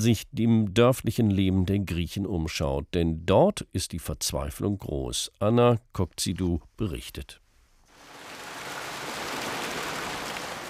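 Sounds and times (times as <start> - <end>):
speech: 0.0 - 7.4
warm water gushing into thermal bath pool: 7.9 - 10.6.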